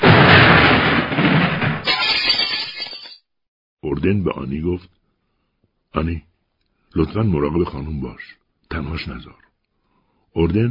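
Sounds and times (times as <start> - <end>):
loud explosion booming: 0.0 - 1.9
breaking glass shards crashing: 0.0 - 3.3
speech: 4.0 - 5.0, 5.9 - 6.3, 6.9 - 9.4, 10.3 - 10.7.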